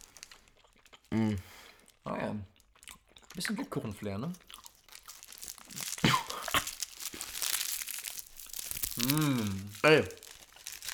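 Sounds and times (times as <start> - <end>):
foil wrapper crinkling as chocolate balls are unwrapped: 0.0 - 0.8, 4.4 - 10.9
eating chocolate balls: 0.0 - 10.9
speech: 1.1 - 2.5, 3.4 - 4.5, 9.0 - 10.2.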